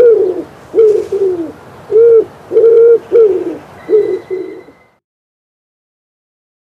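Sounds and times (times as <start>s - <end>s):
common wood pigeon cooing: 0.0s - 4.9s.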